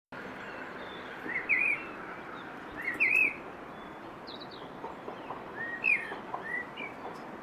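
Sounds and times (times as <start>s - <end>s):
common blackbird Turdus merula giving brief whistled phrases: 2.8s - 3.4s, 5.6s - 6.9s.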